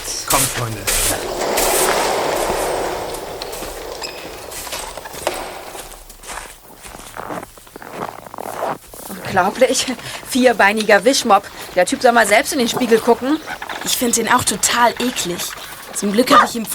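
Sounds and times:
rushing outdoor noise at a racetrack: 0.0 - 7.4
speech: 0.3 - 1.7, 9.4 - 16.7
footsteps: 0.5 - 9.3
horse hooves clopping at a racetrack: 0.6 - 16.7.

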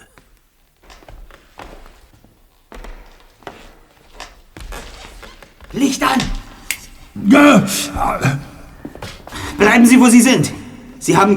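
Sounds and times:
slow heavy footsteps in a dark museum room: 0.1 - 11.3
speech: 5.7 - 6.3, 7.2 - 8.4, 9.6 - 11.3
low ambient hiss: 5.7 - 11.3.

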